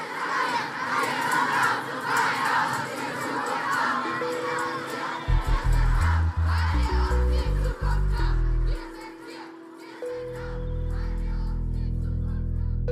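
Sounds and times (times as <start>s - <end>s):
crowd of young climate protesters shouting and chanting at a demonstration: 0.0s - 12.8s.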